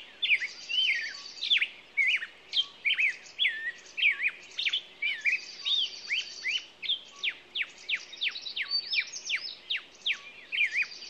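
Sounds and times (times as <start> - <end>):
songbird singing clear looping whistled phrases in the morning: 0.2 - 11.0.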